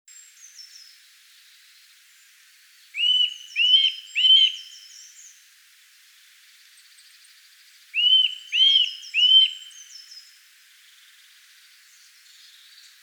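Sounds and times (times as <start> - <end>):
Eurasian nuthatch Sitta europaea giving rising-falling whistled calls: 3.0 - 5.2, 8.0 - 10.3.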